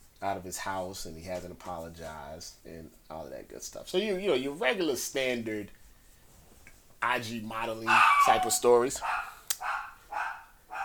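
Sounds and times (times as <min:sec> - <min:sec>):
speech: 0:00.2 - 0:05.8, 0:07.0 - 0:09.2
small dog barking: 0:07.8 - 0:10.8.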